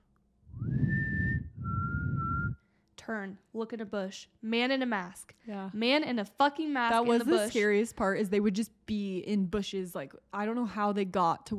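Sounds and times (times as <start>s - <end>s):
low rumbling noise: 0.4s - 2.6s
person whistling two sustained notes: 0.5s - 2.6s
speech: 3.1s - 11.5s.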